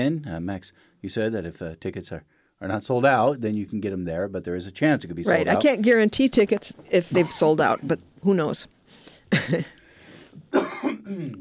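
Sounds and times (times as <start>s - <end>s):
speech: 0.0s - 9.8s, 10.5s - 11.4s
person coughing: 10.5s - 11.4s.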